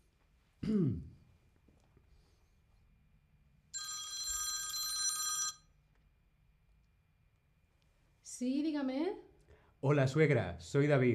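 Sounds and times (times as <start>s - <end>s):
person clearing throat: 0.6s - 1.2s
speech: 0.7s - 1.1s, 8.4s - 11.1s
sustained electronic telephone ring during a call: 3.8s - 5.7s.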